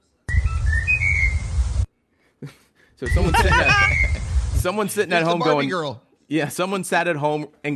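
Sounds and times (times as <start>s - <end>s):
bird whistling a melody: 0.3s - 1.5s, 3.1s - 4.2s
laughter: 2.4s - 4.4s
speech: 2.4s - 7.7s.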